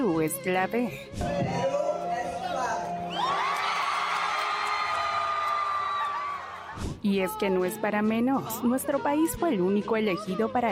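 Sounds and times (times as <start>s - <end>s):
speech: 0.2s - 1.8s, 7.0s - 10.7s
crowd shouting and cheering: 3.0s - 7.0s
audience applauding: 3.1s - 6.8s
high-pitched screams: 3.1s - 6.8s.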